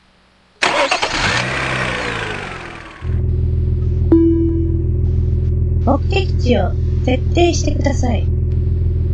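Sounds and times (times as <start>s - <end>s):
car engine cranking and starting: 0.6s - 9.1s
bright tone: 4.1s - 5.4s
speech: 5.9s - 8.4s.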